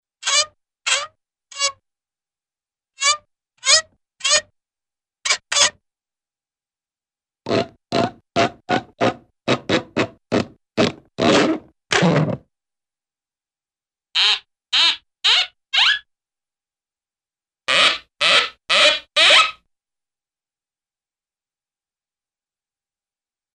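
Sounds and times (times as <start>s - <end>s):
funny cartoon creaks and squeaks: 0.2s - 1.8s, 3.0s - 4.5s, 5.3s - 5.8s, 7.5s - 12.4s, 14.2s - 16.1s, 17.7s - 19.6s.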